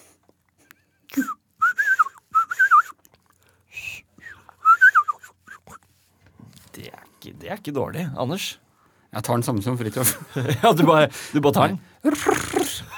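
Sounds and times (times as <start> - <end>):
person whistling imitation of chaffinch song: 1.1 - 3.0, 3.8 - 5.8
speech: 7.5 - 8.6, 9.2 - 12.6
laughter: 10.0 - 11.1.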